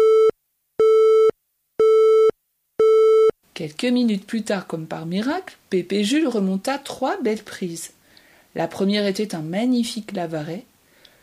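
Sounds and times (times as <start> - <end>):
telephone busy tone after a call cuts off: 0.0 - 3.3
speech: 3.6 - 10.7.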